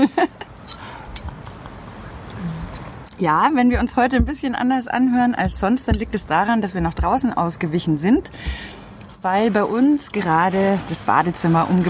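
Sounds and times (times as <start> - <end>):
faint outdoor hum: 0.0 - 11.8
glasses or bottles clinking in a toast: 0.6 - 1.4
speech: 3.2 - 11.8
soft knocks: 3.7 - 4.5, 5.4 - 7.4.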